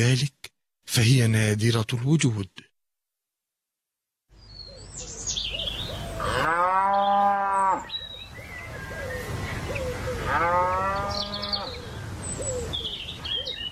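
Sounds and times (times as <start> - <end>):
speech: 0.0 - 2.7
birds chirping: 4.3 - 13.7
cow mooing: 6.2 - 7.9, 10.2 - 11.7.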